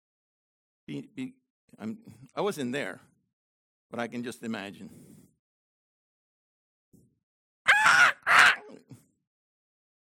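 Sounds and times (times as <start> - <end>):
speech: 0.9 - 3.1, 3.9 - 5.2
crow-like bird cawing: 7.7 - 8.7.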